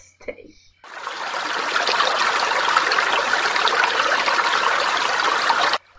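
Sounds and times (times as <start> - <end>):
water splashing and churning: 0.9 - 5.8.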